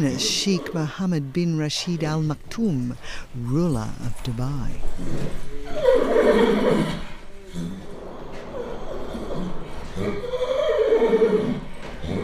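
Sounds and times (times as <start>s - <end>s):
breeding stallion at stud neighing: 0.0s - 2.4s, 4.9s - 12.2s
speech: 0.0s - 7.8s
low noise: 0.0s - 12.2s.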